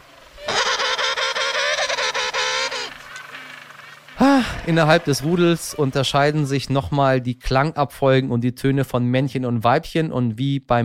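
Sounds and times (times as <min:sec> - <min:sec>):
another bird's call: 0:00.0 - 0:05.8
penguin colony braying and honking: 0:00.0 - 0:06.6
speech: 0:04.7 - 0:10.8.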